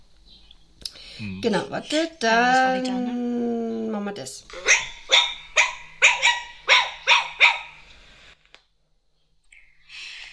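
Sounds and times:
speech: 1.2s - 3.4s, 4.0s - 4.8s
Chihuahua barking: 4.5s - 7.8s.

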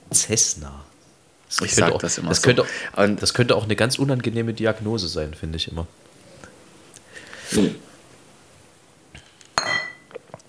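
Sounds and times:
speech: 0.3s - 0.9s, 1.5s - 6.1s, 7.5s - 7.8s
glasses clinking in a toast: 9.6s - 10.2s.

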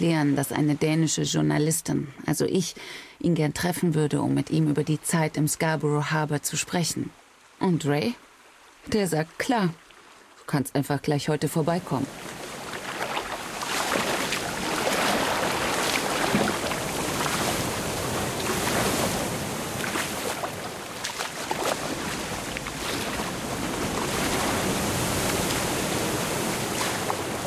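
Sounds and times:
speech: 0.0s - 9.8s, 10.5s - 12.4s
roar of rushing water in ocean surf: 4.5s - 10.6s, 11.2s - 27.4s
kayak paddle splashes in ocean surf: 11.9s - 27.4s.

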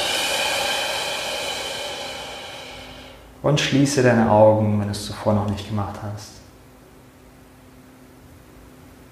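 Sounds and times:
long steady exhale during a guided breathing exercise: 0.0s - 3.4s
speech: 3.4s - 6.4s.

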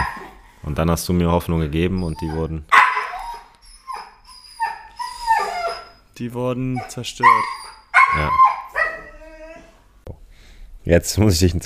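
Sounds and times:
speech: 0.6s - 2.8s, 6.2s - 8.5s, 10.8s - 11.6s
dog barking with whining drawn-out tone: 2.7s - 3.4s, 7.2s - 9.1s.

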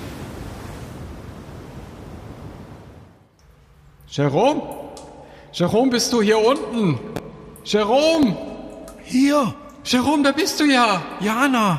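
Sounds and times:
strong wind and waves on open water around a pedal boat: 0.0s - 3.3s
speech: 4.1s - 4.8s, 5.5s - 8.5s, 9.1s - 11.7s.

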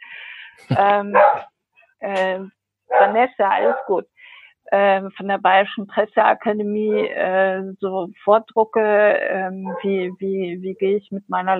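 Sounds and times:
person murmuring hesitantly: 0.6s - 1.1s
speech: 0.6s - 11.5s
dog barking: 1.1s - 1.5s, 2.9s - 3.9s, 9.6s - 9.9s.

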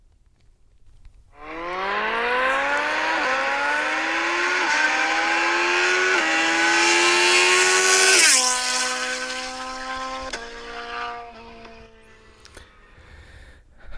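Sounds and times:
car engine revving and accelerating with gear shifts: 1.4s - 13.0s.

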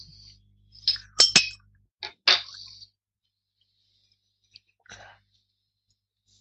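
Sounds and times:
glass beer bottles clinking in a toast: 0.8s - 2.6s.

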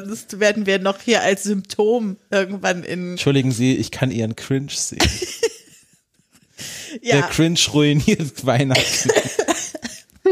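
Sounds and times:
speech: 0.0s - 5.5s, 6.9s - 9.5s
laughter: 5.0s - 5.9s, 8.6s - 10.0s
breathy throat-clearing exhale: 6.6s - 7.0s
short sharp coughs: 8.8s - 10.0s.

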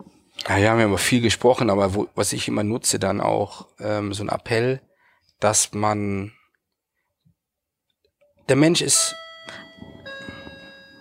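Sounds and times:
speech: 0.4s - 6.4s, 8.5s - 9.6s
electronic doorbell chime: 8.9s - 10.9s.

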